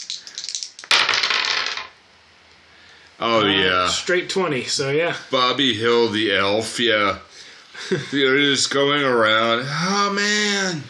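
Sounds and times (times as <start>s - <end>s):
dice rolling on a hard tabletop: 0.0s - 2.0s
speech: 3.2s - 7.3s, 7.9s - 10.8s.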